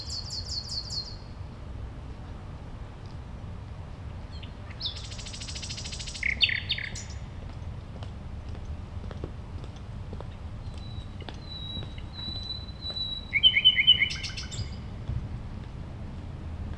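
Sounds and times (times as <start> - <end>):
Common nightingale singing at a playground: 0.0 - 1.3, 4.4 - 7.3, 10.6 - 15.0
low urban hum: 0.0 - 16.7.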